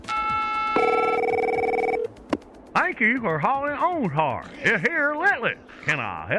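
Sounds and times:
telephone ringing with electronic tones: 0.1 - 2.1
speech: 2.8 - 6.3.

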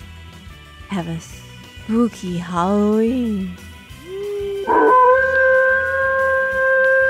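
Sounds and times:
speech: 0.9 - 3.7, 4.7 - 5.0
dog howling: 4.0 - 7.0.

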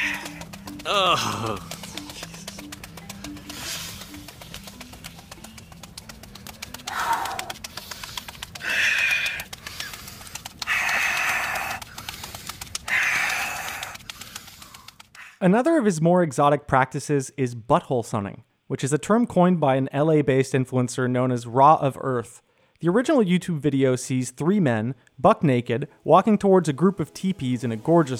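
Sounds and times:
hands slapping bare skin during breathing exercises: 0.0 - 15.4
loud forceful breaths during breathing exercises: 0.0 - 15.4
speech: 0.9 - 1.8, 15.4 - 28.1.

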